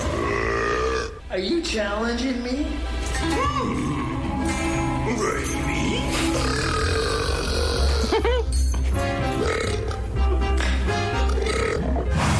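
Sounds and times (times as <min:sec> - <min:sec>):
loud drawn-out deep croaking belches: 0:00.0 - 0:01.2, 0:06.1 - 0:08.4, 0:09.3 - 0:12.3
speech: 0:01.4 - 0:04.2, 0:05.0 - 0:06.8, 0:08.1 - 0:09.1.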